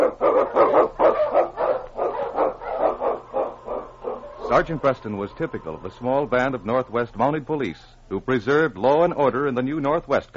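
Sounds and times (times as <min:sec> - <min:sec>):
Eskimo lead sled dog husky barking: 0:00.0 - 0:04.9
speech: 0:04.5 - 0:10.3.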